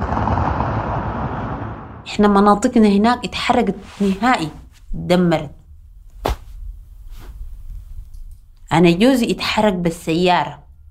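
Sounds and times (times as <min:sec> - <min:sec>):
loud sustained roar of explosions with dense crackling: 0:00.0 - 0:02.1
speech: 0:02.1 - 0:05.6, 0:08.7 - 0:10.6.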